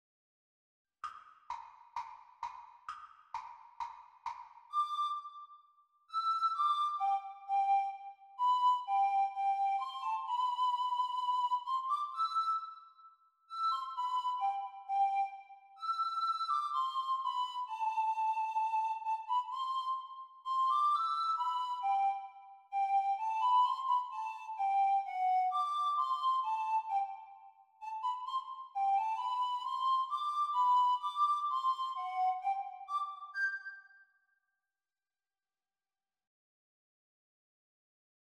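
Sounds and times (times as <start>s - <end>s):
descant recorder performance: 4.7s - 5.4s, 6.1s - 34.0s.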